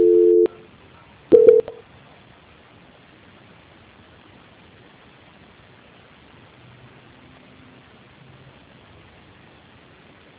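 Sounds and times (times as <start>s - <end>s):
steady mid-pitched telephone beep during a call transfer: 0.0s - 0.6s, 1.3s - 1.8s.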